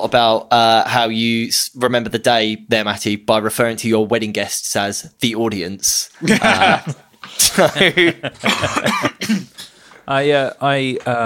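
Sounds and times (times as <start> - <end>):
speech: 0.0 - 9.5, 10.1 - 11.2
laughter: 6.2 - 9.6
person coughing with COVID: 8.4 - 9.8.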